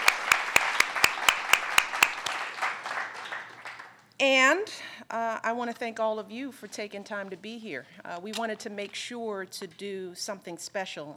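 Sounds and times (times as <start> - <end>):
small group applauding: 0.0 - 4.1
speech: 4.2 - 11.1.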